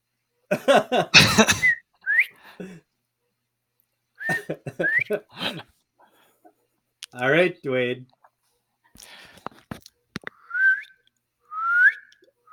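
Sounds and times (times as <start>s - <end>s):
speech: 0.5s - 1.7s, 2.6s - 2.8s, 4.5s - 5.7s, 7.1s - 8.2s
person coughing: 1.1s - 1.8s
human whistle call: 1.6s - 2.4s, 10.4s - 12.5s.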